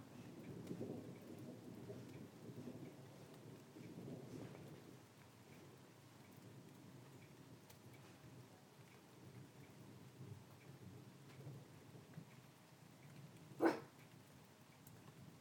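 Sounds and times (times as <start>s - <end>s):
distant thunder from a passing storm: 0.0s - 5.3s, 13.4s - 13.9s
rain pattering: 0.0s - 15.3s.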